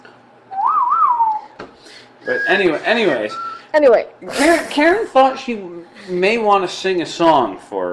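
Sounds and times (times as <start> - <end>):
person whistling: 0.5 - 1.5, 2.2 - 3.7
speech: 2.2 - 7.9.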